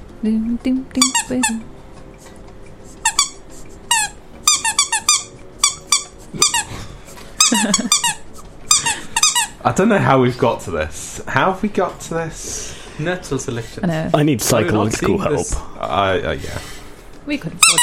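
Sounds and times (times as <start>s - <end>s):
speech: 0.2s - 1.8s, 7.6s - 8.0s, 9.6s - 16.7s, 17.3s - 17.8s
squeaky rubber duck toy being squeezed: 1.0s - 1.6s, 3.0s - 6.7s, 7.4s - 9.6s, 17.6s - 17.8s.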